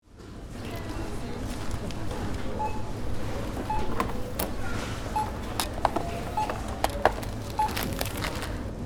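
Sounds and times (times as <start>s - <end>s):
supermarket checkout scanner beeping: 0.6s - 8.7s.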